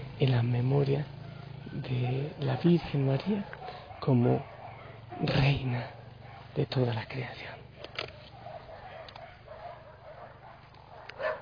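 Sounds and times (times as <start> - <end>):
dogs barking: 0.0 - 11.4
speech: 0.2 - 4.5, 5.1 - 6.0, 6.6 - 7.6.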